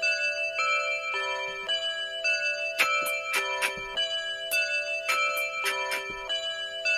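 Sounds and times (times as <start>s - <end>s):
sustained ringing clock tower bell tones: 0.0s - 6.9s
sharp mechanical clock tower ticks: 2.8s - 6.9s.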